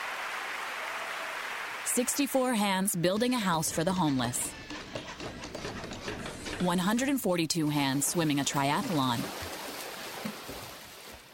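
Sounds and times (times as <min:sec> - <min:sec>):
large crowd applauding: 0:00.0 - 0:02.1
speech: 0:02.0 - 0:04.7, 0:06.6 - 0:09.5.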